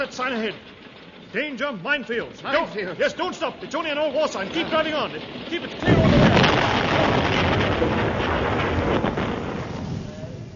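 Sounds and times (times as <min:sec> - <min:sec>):
speech: 0:00.0 - 0:00.7, 0:01.3 - 0:06.4
explosion sound effect: 0:05.8 - 0:10.5.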